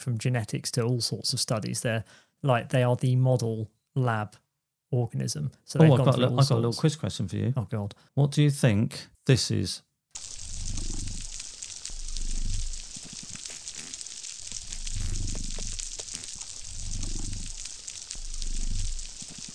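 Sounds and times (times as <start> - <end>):
speech: 0.0 - 9.9
snapping shrimp crackling on a coral reef: 10.2 - 19.5.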